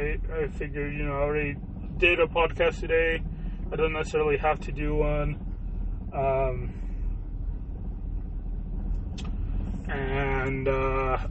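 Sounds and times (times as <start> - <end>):
speech: 0.0 - 5.5, 6.1 - 6.8, 9.9 - 11.2
cars idling in a drive-thru line: 0.0 - 11.2.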